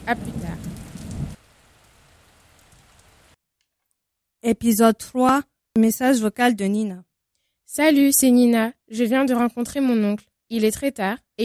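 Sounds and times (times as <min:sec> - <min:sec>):
rumbling thunder: 0:00.0 - 0:02.9
rain beating on windows: 0:00.0 - 0:03.4
speech: 0:00.1 - 0:00.8, 0:04.5 - 0:07.1, 0:07.7 - 0:11.4.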